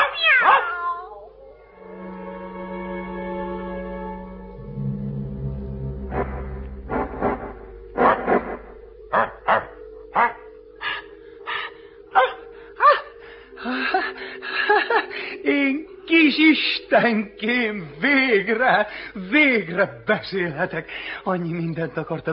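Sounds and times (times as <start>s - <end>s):
dog barking: 0.0s - 1.0s, 12.2s - 13.1s
cat yowling: 0.0s - 1.4s
long low drone: 1.4s - 19.4s
speech: 17.0s - 22.3s.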